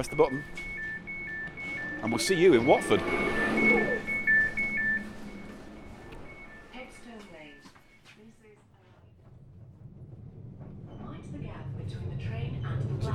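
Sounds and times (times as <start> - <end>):
speech: 0.0 - 0.6, 2.0 - 3.5
brief high electronic tone: 0.0 - 7.7
interior rumble of a suburban passenger train in motion: 0.0 - 7.7, 8.6 - 13.1.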